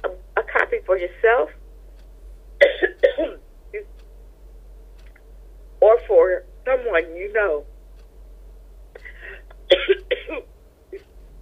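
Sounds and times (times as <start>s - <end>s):
speech: 0.9s - 1.6s, 6.1s - 7.7s
woman coughing with a dry throat: 2.6s - 3.4s, 9.0s - 10.5s.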